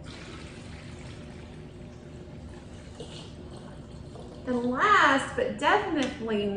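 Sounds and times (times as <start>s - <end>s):
water pouring into a container while making lemonade: 0.0s - 5.0s
speech: 4.5s - 6.5s.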